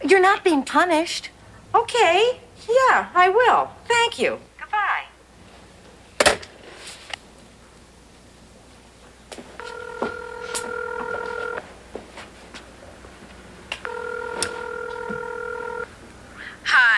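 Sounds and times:
speech: 0:00.1 - 0:04.5
steady electronic ring tones on the line: 0:09.6 - 0:11.6, 0:13.8 - 0:15.9
telephone being dialed: 0:09.6 - 0:11.6, 0:13.8 - 0:15.9.

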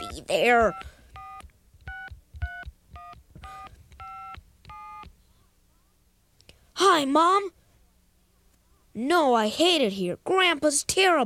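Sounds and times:
push-button tones of a telephone being dialed: 0:00.0 - 0:05.1
speech: 0:00.2 - 0:00.9, 0:06.8 - 0:07.6, 0:09.0 - 0:11.2.

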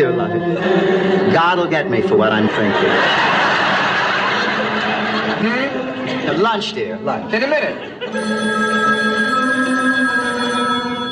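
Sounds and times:
laughter: 0:00.5 - 0:06.6, 0:07.3 - 0:08.4
speech: 0:01.4 - 0:03.4, 0:05.4 - 0:05.7, 0:06.3 - 0:09.2
telephone ringing with electronic tone: 0:08.1 - 0:11.1.

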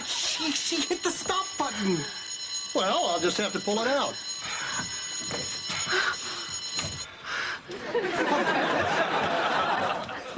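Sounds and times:
telephone ringing with high electronic tone: 0:00.0 - 0:07.1
speech: 0:00.4 - 0:02.2, 0:02.8 - 0:06.2, 0:07.9 - 0:09.3
people laughing: 0:07.7 - 0:10.3.

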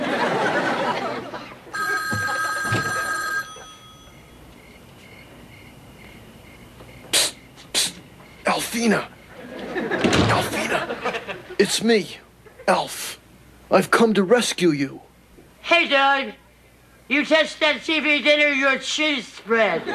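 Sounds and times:
laughter: 0:00.0 - 0:03.8, 0:09.2 - 0:11.7, 0:19.6 - 0:19.9
telephone ringing with bright buzzing trill: 0:01.7 - 0:04.4
short sharp vocal bursts: 0:07.1 - 0:09.1
speech: 0:08.8 - 0:09.2, 0:11.6 - 0:15.1, 0:15.7 - 0:16.4, 0:17.1 - 0:19.9.

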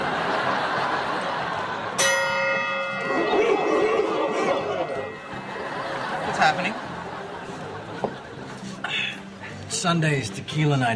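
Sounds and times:
people laughing: 0:00.0 - 0:09.7
crowd chatter: 0:00.0 - 0:09.8
single bell struck sharply and ringing: 0:02.0 - 0:07.0
speech: 0:06.5 - 0:06.8, 0:09.8 - 0:10.9.

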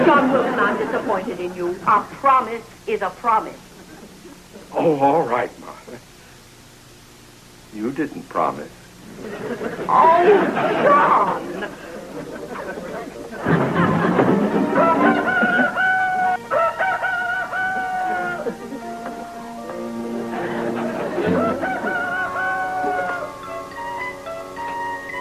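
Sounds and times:
laughter: 0:00.0 - 0:01.6, 0:03.7 - 0:04.7, 0:09.1 - 0:16.4, 0:17.6 - 0:23.3
speech: 0:00.1 - 0:03.7, 0:04.7 - 0:06.1, 0:07.7 - 0:13.7
rooster crowing: 0:14.7 - 0:19.2, 0:20.5 - 0:23.7.

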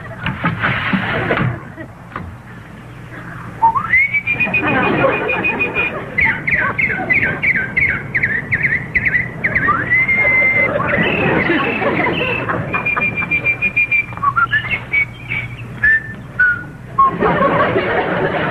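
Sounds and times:
laughter: 0:00.0 - 0:18.4
low rumble: 0:00.0 - 0:18.4
birds repeated chirping trills: 0:01.2 - 0:18.4
bird long rising whistle: 0:03.3 - 0:17.2.

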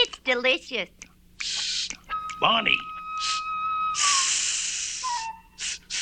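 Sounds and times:
speech: 0:00.3 - 0:01.6, 0:02.4 - 0:03.4
hot dog sizzling: 0:03.2 - 0:06.0.

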